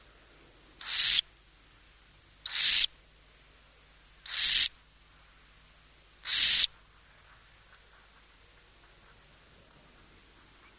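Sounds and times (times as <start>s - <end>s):
burrowing owl producing loud breathy screeching rasps: 0.8s - 1.2s, 2.5s - 2.9s, 4.3s - 4.7s, 6.2s - 6.7s.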